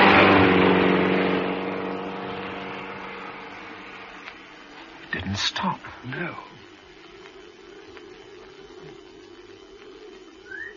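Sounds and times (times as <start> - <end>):
car driving past with engine hum and road noise: 0.0 - 4.2
speech: 5.4 - 6.6.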